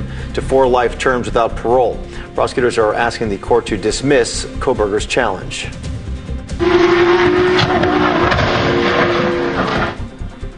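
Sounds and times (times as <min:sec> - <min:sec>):
speech: 0:00.4 - 0:05.9, 0:06.6 - 0:07.9
Porsche race car engine roaring at full speed at a racetrack in California: 0:06.6 - 0:10.1.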